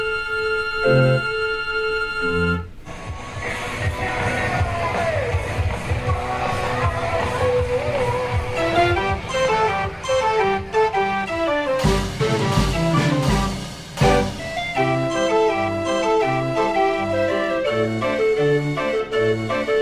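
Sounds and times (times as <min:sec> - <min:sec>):
bright organ-like fairground tune: 0:00.0 - 0:02.8, 0:08.3 - 0:19.8
bouncy melody with a low pulsing bass: 0:00.7 - 0:01.6, 0:02.2 - 0:02.8, 0:04.2 - 0:19.8
fairground crowd noise: 0:02.9 - 0:19.8.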